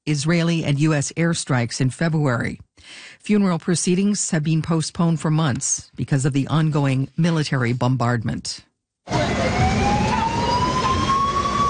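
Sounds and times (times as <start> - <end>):
speech: 0.1 - 8.7
UN escort vehicle siren wailing with a slowly rising tone: 9.1 - 11.6.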